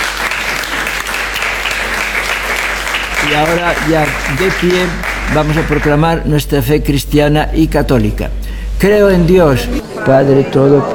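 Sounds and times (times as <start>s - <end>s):
audience applauding: 0.0s - 6.2s
speech: 3.3s - 10.9s.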